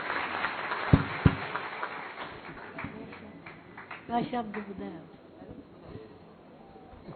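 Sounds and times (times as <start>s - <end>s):
large audience applause: 0.0s - 4.8s.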